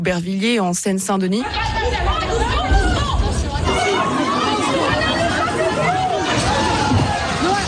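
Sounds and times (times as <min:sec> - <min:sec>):
speech: 0:00.0 - 0:02.9
shoppers' crowd babble of many overlapping voices: 0:00.0 - 0:07.6
people shouting in a crowd: 0:01.5 - 0:07.6.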